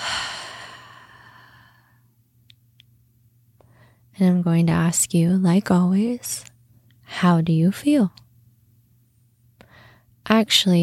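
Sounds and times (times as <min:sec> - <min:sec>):
deep exhale during a guided meditation: 0:00.0 - 0:02.0
speech: 0:04.2 - 0:06.5, 0:07.2 - 0:08.2, 0:10.3 - 0:10.8.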